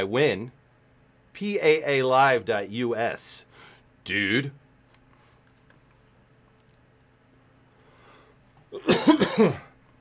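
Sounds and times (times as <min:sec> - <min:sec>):
speech: 0:00.0 - 0:00.6, 0:01.4 - 0:04.6, 0:08.7 - 0:09.7
harsh hacking coughing fit: 0:08.7 - 0:09.8.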